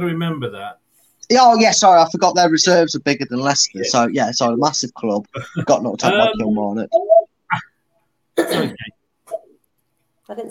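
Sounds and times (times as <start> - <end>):
speech: 0.0 - 7.7, 8.4 - 9.0, 10.3 - 10.4
woman clearing her throat: 6.0 - 6.4, 8.4 - 9.6.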